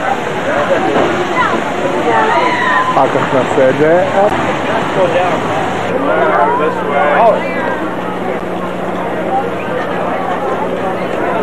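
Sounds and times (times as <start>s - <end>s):
flowing river water rushing: 0.0s - 6.9s
faint voices murmuring: 0.0s - 11.4s
speech: 3.0s - 7.6s.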